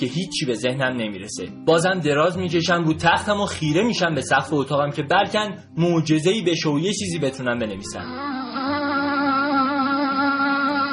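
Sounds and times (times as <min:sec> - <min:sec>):
speech: 0:00.0 - 0:08.6
mosquito whining in a bedroom at night: 0:07.8 - 0:10.9.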